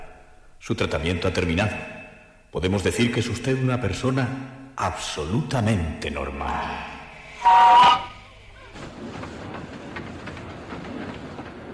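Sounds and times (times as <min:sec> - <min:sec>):
speech: 0:00.7 - 0:08.0
horn-like blast: 0:07.4 - 0:08.3
train carriage rumbling steadily along the rails: 0:07.5 - 0:11.7
rhythmic clickety-clack beats of train carriage on rails: 0:08.6 - 0:11.7.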